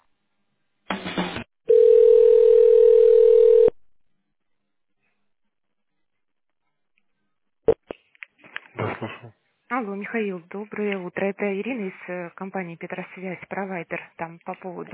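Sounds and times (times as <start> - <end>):
telephone ringing tone while a call is transferred: 1.7 - 3.8
speech: 9.8 - 14.9.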